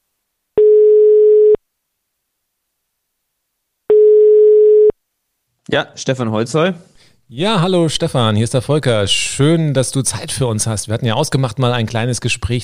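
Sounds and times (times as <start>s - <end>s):
telephone ringback tone of an outgoing call: 0.6s - 1.6s, 3.9s - 4.9s
speech: 5.7s - 12.6s.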